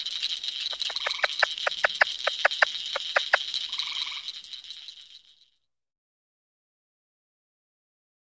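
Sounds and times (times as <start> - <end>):
steady high insect-like chorus: 0.0 - 5.3
plains leopard frog Rana blairi clucking chuck notes and pulsed trill: 0.7 - 4.3.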